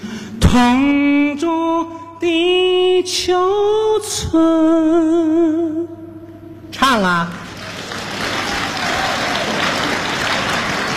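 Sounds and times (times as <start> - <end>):
speech: 0.5 - 6.0, 6.9 - 7.4
audience applause at a live stage show: 7.4 - 10.9.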